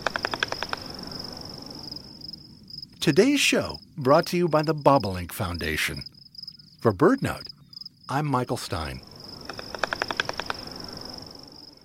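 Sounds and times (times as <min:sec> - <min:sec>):
Short-eared Owl wing claps: 0:00.0 - 0:00.9, 0:09.5 - 0:10.8
background hiss: 0:00.0 - 0:11.8
speech: 0:03.0 - 0:06.1, 0:06.8 - 0:09.1.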